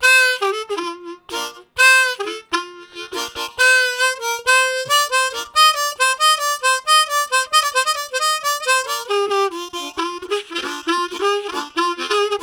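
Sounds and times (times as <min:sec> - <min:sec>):
harmonica riffs: 0:00.0 - 0:12.4.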